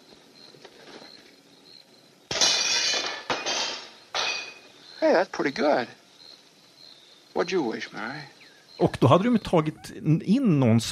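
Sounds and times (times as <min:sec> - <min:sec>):
glass shards tinkling: 0:02.3 - 0:04.7
window glass shattering from a thrown rock: 0:02.3 - 0:04.7
speech: 0:05.0 - 0:06.0, 0:07.4 - 0:10.8.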